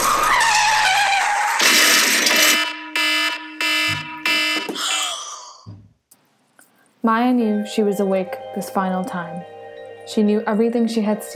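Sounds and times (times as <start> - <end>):
car tires screeching: 0.0 - 2.5
car crash: 0.0 - 2.8
car alarm blaring: 1.6 - 5.2
speech: 7.0 - 11.3.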